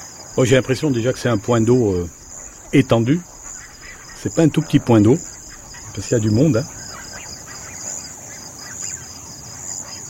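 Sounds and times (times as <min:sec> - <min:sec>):
crickets and grasshoppers chirping at night beside a pond: 0:00.0 - 0:10.0
soft hiss: 0:00.0 - 0:10.0
speech: 0:00.4 - 0:03.3, 0:04.2 - 0:06.8.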